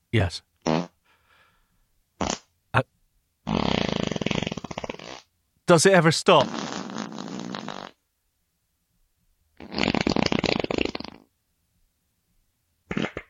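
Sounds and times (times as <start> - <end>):
speech: 0.1 - 0.5, 5.7 - 6.7
raspy farts: 0.6 - 1.0, 2.2 - 2.5, 3.5 - 5.3, 6.4 - 8.0, 9.6 - 11.3, 12.9 - 13.2.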